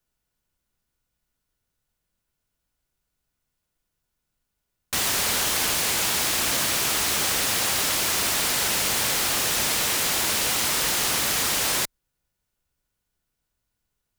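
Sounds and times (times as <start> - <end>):
noise: 5.0 - 11.9.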